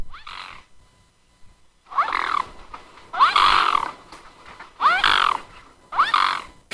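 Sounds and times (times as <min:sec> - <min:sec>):
mute swan giving hoarse, nasal calls: 0:01.9 - 0:06.6.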